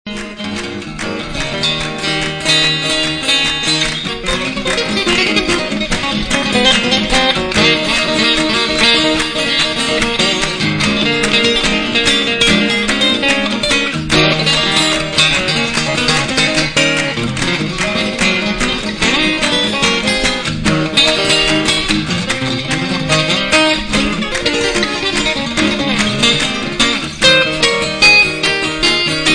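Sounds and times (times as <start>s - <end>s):
guitar: 0.0s - 29.3s.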